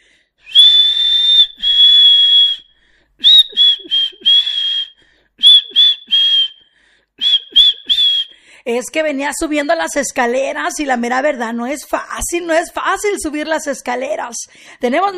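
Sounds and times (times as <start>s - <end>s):
loud human whistling: 0.4s - 8.4s
speech: 8.7s - 15.1s.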